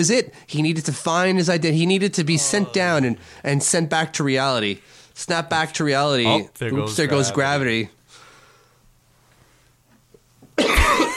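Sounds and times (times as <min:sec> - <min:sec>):
speech: 0:00.0 - 0:08.0
single loud harsh breathy cough: 0:10.6 - 0:11.1.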